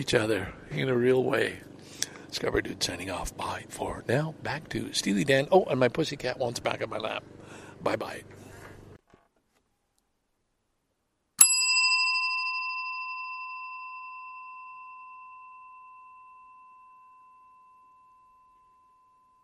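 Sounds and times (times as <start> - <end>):
speech: 0.0 - 8.4
single bell struck with long after-ring: 11.4 - 19.4.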